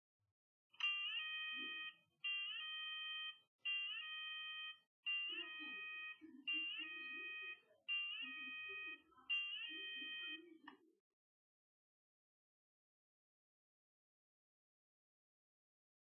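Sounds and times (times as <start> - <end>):
ringtone: 0.8 - 10.8.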